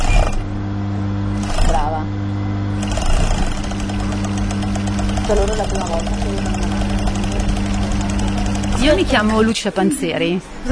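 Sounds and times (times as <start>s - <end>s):
sewing machine starting to sew: 0.0s - 0.5s, 1.4s - 2.0s, 2.8s - 9.6s
constant low hum: 0.0s - 9.6s
speech: 5.3s - 6.6s, 8.8s - 10.6s.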